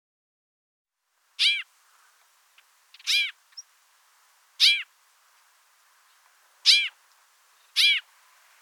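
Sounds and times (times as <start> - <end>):
White-winged snowfinch giving sharp nasal downward-arched call notes: 1.4 - 3.7, 4.6 - 4.9, 6.1 - 8.6.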